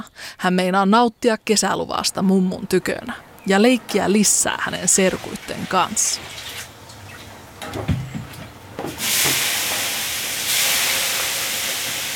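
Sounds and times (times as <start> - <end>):
speech: 0.0 - 6.4
water hissing on hot sauna stones: 9.0 - 12.1.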